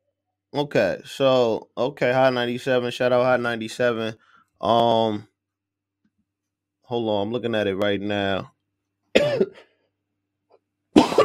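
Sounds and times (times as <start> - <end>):
speech: 0.5 - 5.3, 6.9 - 8.5, 9.2 - 9.7
harsh raspy coughs while smoking: 9.1 - 9.8, 10.9 - 11.2.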